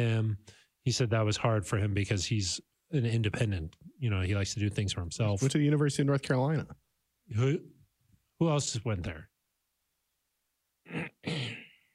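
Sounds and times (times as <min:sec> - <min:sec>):
speech: 0:00.0 - 0:07.8, 0:08.4 - 0:09.3, 0:10.9 - 0:11.4
person clearing throat: 0:10.9 - 0:11.9.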